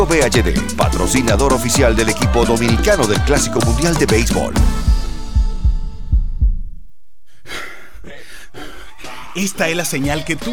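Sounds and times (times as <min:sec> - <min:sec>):
speech: 0:00.0 - 0:05.0, 0:09.4 - 0:10.5
deep booming heartbeat sound effect: 0:01.8 - 0:06.9.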